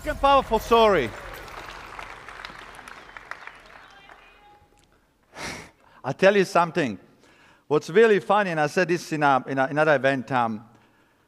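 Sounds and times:
speech: 0.0 - 1.2, 6.0 - 7.1, 7.7 - 10.7
crowd clapping at an event after a speaker's story: 0.0 - 4.8.

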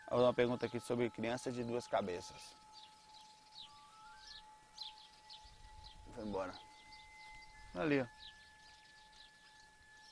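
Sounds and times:
house sparrow chirping: 0.0 - 10.1
speech: 0.1 - 2.6, 6.2 - 6.7, 7.7 - 8.4.

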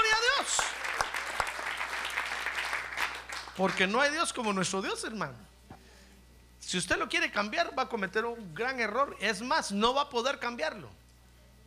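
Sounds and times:
church congregation applauding during a worship service: 0.0 - 4.6
speech: 3.6 - 5.5, 6.7 - 11.0.

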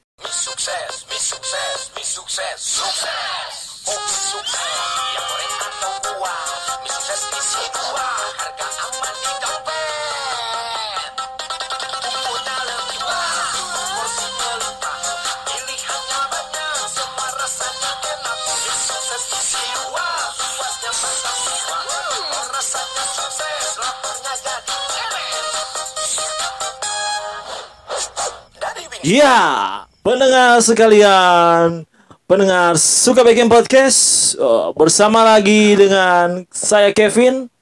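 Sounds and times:
speech: 0.6 - 9.3, 29.0 - 37.6
bright busy music with layered melodic lines: 3.9 - 28.2.

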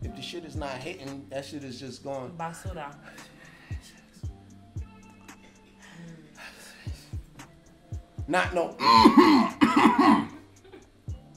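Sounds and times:
speech: 0.3 - 3.3, 8.3 - 10.2
raspy coughs: 8.8 - 10.9.

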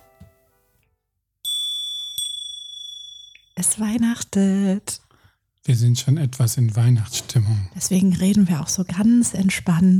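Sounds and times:
bright high bell struck: 1.4 - 3.6
speech: 3.6 - 5.0, 5.6 - 9.9.

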